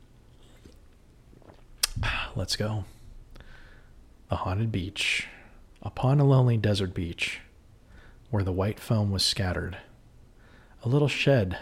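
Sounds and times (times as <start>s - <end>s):
low steady hum: 0.0s - 11.5s
person sipping a soda: 0.1s - 2.4s
person swallowing: 0.4s - 2.4s
speech: 2.4s - 3.0s, 4.3s - 7.5s, 8.3s - 9.9s, 10.8s - 11.5s.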